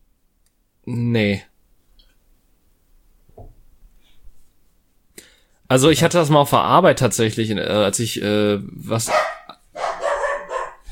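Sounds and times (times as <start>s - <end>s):
speech: 0.9s - 1.5s, 5.7s - 9.3s
dog barking: 9.1s - 10.8s.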